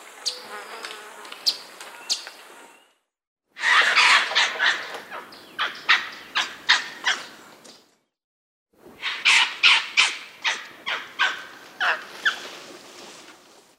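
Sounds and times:
wedge-capped capuchin harsh squawking barks: 3.6 - 7.3, 9.0 - 12.0.

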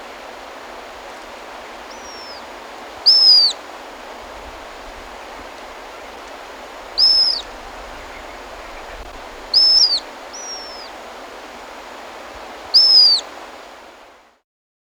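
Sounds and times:
low steady hiss: 0.0 - 14.4
mouse-colored thistletail piercing downward-sliding notes in Ecuador: 3.0 - 3.6, 7.0 - 7.5, 9.5 - 10.9, 12.8 - 13.2.

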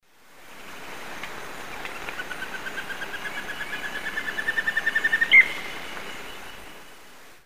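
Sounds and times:
Rhytipterna simplex singing in the Eastern Lowlands of South America: 1.7 - 7.1.

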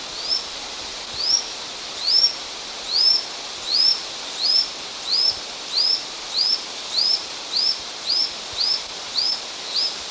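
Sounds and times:
Lanceolated Monklet in the Eastern Lowlands of South America: 0.1 - 0.5, 1.1 - 10.0.

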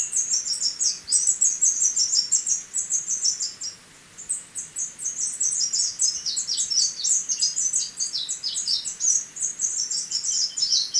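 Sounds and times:
spectacled whitestart twittering song in Ecuador: 0.0 - 10.9.

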